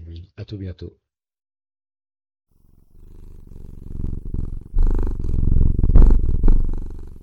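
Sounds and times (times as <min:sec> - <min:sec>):
speech: 0:00.4 - 0:01.1
cat purring: 0:02.6 - 0:07.2.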